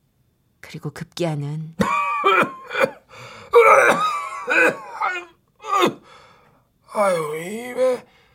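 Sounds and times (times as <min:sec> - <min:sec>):
speech: 0:00.7 - 0:03.0, 0:07.0 - 0:08.1
elderly man coughing hoarsely lying in an attic room on a winter day: 0:01.8 - 0:06.0.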